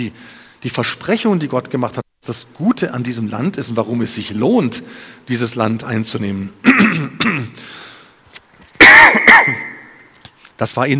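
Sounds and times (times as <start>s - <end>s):
speech: 0.0s - 7.9s, 9.0s - 9.7s, 10.6s - 10.9s
harsh throat-clearing coughs: 6.6s - 7.6s, 8.8s - 10.0s.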